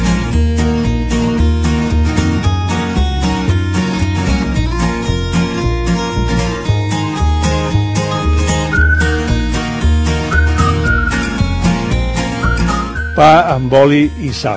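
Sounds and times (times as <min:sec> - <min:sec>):
loud full music track with steady bouncy bass rhythm: 0:00.0 - 0:14.5
whistling a short melodic line: 0:06.6 - 0:13.8
speech: 0:13.2 - 0:14.5.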